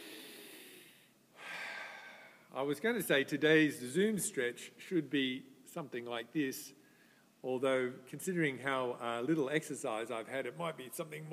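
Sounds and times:
person taking a deep breath during an online class: 0.0s - 2.5s
speech: 2.5s - 6.8s, 7.4s - 11.3s.

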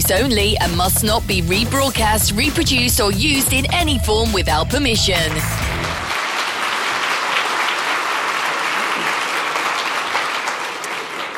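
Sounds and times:
speech: 0.1s - 5.8s
large audience applauding at an IMSA motorsports gathering in the Elkhart Lake area: 5.1s - 11.3s.

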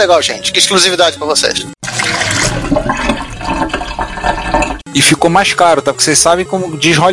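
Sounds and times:
speech: 0.0s - 2.2s, 5.0s - 7.1s
loud continuous rushing water: 1.8s - 4.8s.

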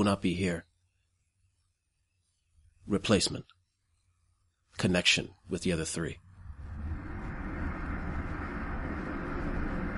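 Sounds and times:
speech: 0.0s - 0.7s, 2.9s - 3.6s, 4.7s - 6.2s
train rumbling with a continuous low mechanical roar: 6.3s - 9.9s.

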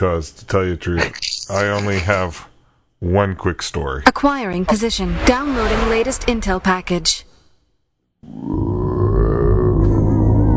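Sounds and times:
speech: 0.0s - 7.3s, 8.2s - 8.7s
long loud resonant burp: 8.2s - 10.4s.

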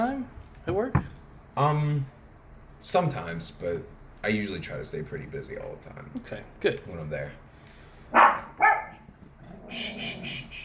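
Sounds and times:
speech: 0.0s - 2.2s, 2.8s - 7.4s
dog barking: 8.1s - 9.1s
dog softer higher-pitched yip or whine: 8.2s - 9.0s.

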